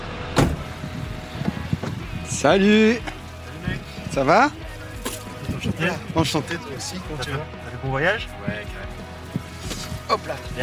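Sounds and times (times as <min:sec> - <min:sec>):
grey car engine idling at a train station: 0:00.0 - 0:10.6
grey car door thumping shut at a train station: 0:00.3 - 0:00.8
speech: 0:02.4 - 0:04.6, 0:05.6 - 0:09.0, 0:10.1 - 0:10.6.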